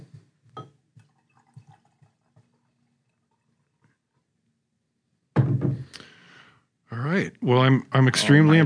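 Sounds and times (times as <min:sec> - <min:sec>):
soft cider drips: 0:00.2 - 0:04.6
cider rushing and splashing into a glass: 0:00.6 - 0:03.8
speech: 0:07.4 - 0:08.6.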